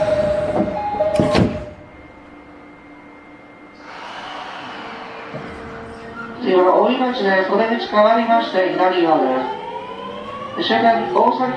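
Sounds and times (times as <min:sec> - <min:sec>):
train doors closing at a station: 0:00.0 - 0:02.2, 0:03.7 - 0:11.5
electric train rumbling and whining as it pulls away: 0:00.0 - 0:11.5
train door chime at a station: 0:00.6 - 0:02.3
speech: 0:06.6 - 0:09.6, 0:10.6 - 0:11.5.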